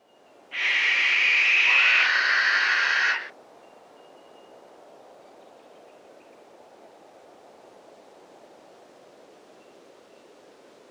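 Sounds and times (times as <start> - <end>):
adult masked owl screeching: 0.6 - 3.3.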